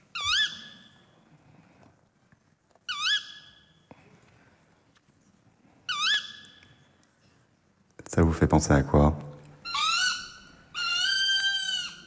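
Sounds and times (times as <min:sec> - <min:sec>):
tawny owl hooting: 0:00.1 - 0:01.0, 0:02.9 - 0:03.7, 0:05.9 - 0:06.6, 0:09.6 - 0:12.0
speech: 0:08.2 - 0:09.2.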